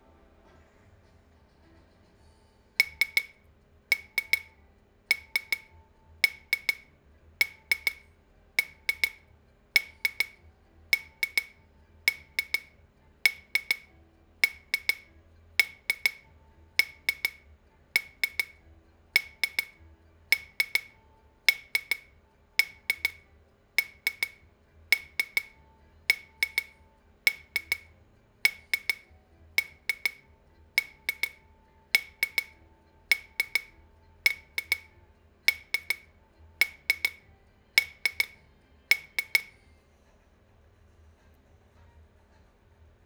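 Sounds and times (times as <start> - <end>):
twisting shaker: 2.8 - 8.0, 8.6 - 9.2, 9.8 - 10.4, 11.0 - 12.7, 13.3 - 17.4, 18.0 - 18.6, 19.2 - 23.2, 23.8 - 27.9, 28.5 - 37.2, 37.8 - 39.6.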